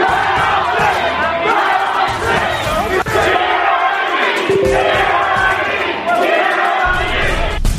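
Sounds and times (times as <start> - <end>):
large crowd of protesters shouting and roaring: 0.0 - 7.6.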